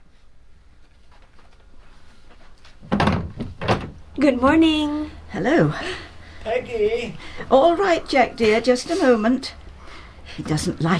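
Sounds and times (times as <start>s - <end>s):
wooden door opening: 2.8s - 4.0s
speech: 4.2s - 9.6s, 10.3s - 10.9s.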